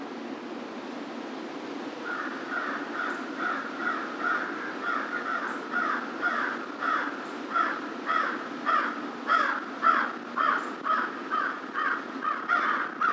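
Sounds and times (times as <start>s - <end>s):
American crow cawing: 2.0s - 13.1s.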